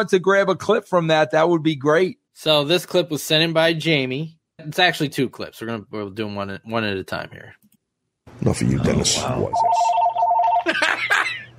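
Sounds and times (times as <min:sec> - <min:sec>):
speech: 0:00.0 - 0:07.6, 0:08.4 - 0:10.0, 0:10.6 - 0:11.3
mobile phone ringing: 0:09.4 - 0:10.8
laughter: 0:10.6 - 0:11.5.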